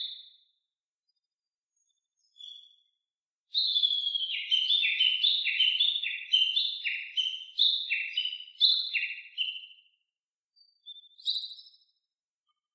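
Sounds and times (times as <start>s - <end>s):
Japanese bush warbler valley-crossing call: 3.6s - 9.6s.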